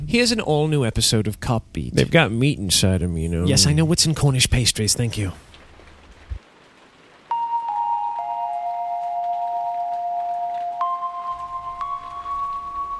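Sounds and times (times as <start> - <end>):
speech: 0.1 - 5.6
steady rain: 2.7 - 12.9
sustained bell-like tones: 7.3 - 12.9.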